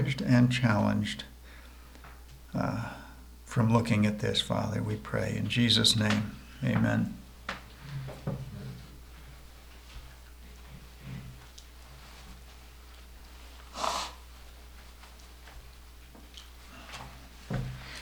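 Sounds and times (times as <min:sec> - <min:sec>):
speech: 0:00.1 - 0:01.3, 0:02.5 - 0:03.0, 0:03.6 - 0:07.2
person blowing their nose: 0:13.7 - 0:14.3.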